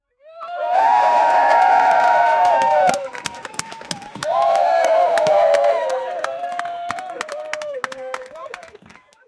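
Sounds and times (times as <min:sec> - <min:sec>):
people cheering at a party: 0:00.4 - 0:09.2.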